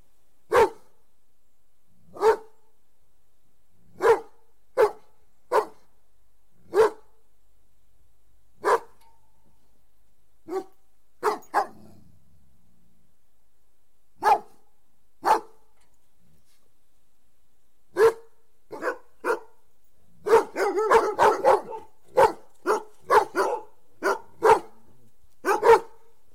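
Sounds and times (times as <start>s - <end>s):
Doberman barking: 0.5s - 0.9s, 2.2s - 2.6s, 4.0s - 5.9s, 6.7s - 7.1s, 8.6s - 9.0s, 10.5s - 11.8s, 14.2s - 14.6s, 15.2s - 15.6s, 18.0s - 19.6s, 20.2s - 24.8s, 25.4s - 26.1s.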